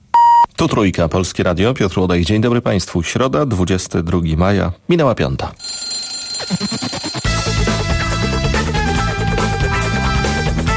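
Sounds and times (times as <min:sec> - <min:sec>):
speech: 0:00.6 - 0:05.8, 0:06.4 - 0:07.1
alarm clock ringing: 0:05.6 - 0:08.0
loud music: 0:07.3 - 0:10.7.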